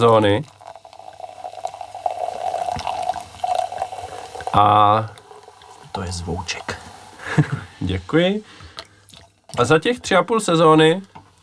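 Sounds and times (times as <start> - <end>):
speech: 0.0 - 0.6, 4.5 - 5.2, 6.0 - 6.8, 7.4 - 8.6, 9.6 - 11.1
liquid from a just-opened bottle pouring into a glass: 0.0 - 7.2
laughter: 7.2 - 7.7.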